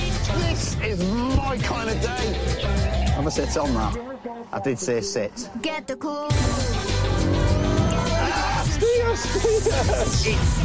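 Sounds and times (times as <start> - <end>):
speech: 0.8 - 6.9, 8.8 - 10.6
supercar engine roaring and revving as it accelerates: 6.6 - 8.5
laughter: 7.4 - 10.6.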